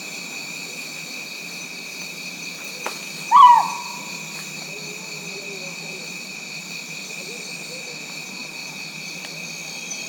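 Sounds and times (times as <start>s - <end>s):
buzzing insects: 0.0s - 10.0s
Rinjani scops owl Otus jolandae hoot: 3.3s - 4.2s.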